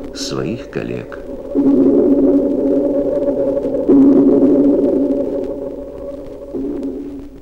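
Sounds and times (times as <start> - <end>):
loud continuous underwater drone with organ-like rumbling tone: 0.0 - 7.4
speech: 0.2 - 2.0.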